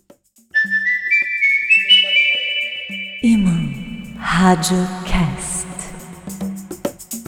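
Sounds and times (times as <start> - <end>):
clear sustained whistled melody: 0.5 - 4.2
low pulsing accompaniment tones: 2.9 - 7.1
speech: 3.2 - 5.4.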